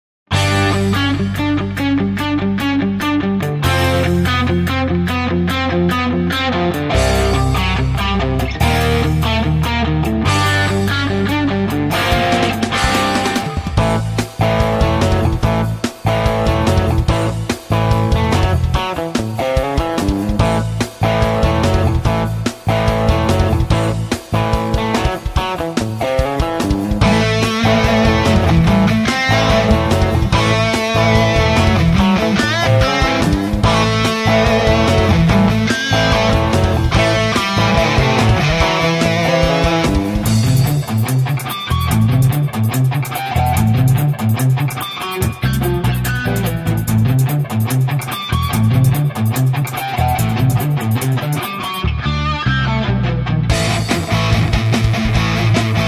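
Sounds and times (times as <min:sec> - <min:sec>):
rock guitar riffs: 0:00.3 - 0:55.8.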